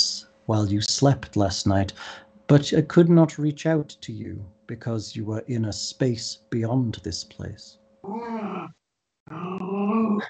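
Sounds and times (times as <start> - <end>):
speech: 0.5 - 10.2
female dog growling: 8.1 - 8.7, 9.3 - 10.2.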